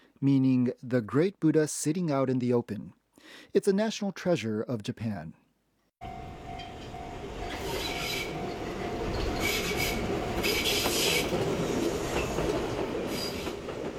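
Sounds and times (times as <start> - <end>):
speech: 0.2 - 5.4
train in Kamakura Japan rumbling along the rails: 6.0 - 13.9
train wheel squeal: 6.2 - 13.6
high metallic hissing of train: 6.5 - 13.4.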